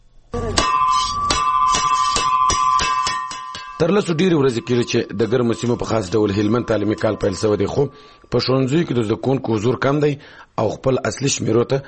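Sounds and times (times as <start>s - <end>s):
school bell ringing: 0.6s - 9.4s
speech: 3.8s - 11.8s.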